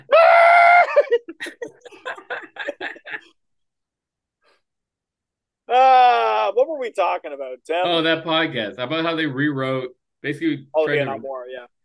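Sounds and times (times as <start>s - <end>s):
loud sustained scream muffled by a microphone muff: 0.0s - 1.1s
laughter: 0.8s - 3.4s
speech: 6.8s - 11.8s.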